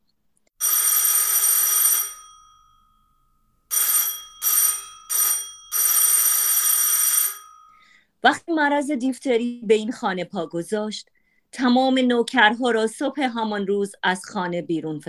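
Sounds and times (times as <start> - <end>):
electric doorbell ringing: 0.6 - 7.9
speech: 8.3 - 15.0.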